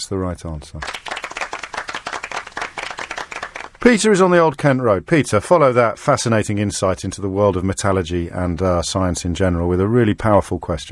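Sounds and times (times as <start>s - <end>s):
speech: 0.0s - 1.1s, 3.8s - 10.9s
crowd applauding: 0.8s - 3.9s.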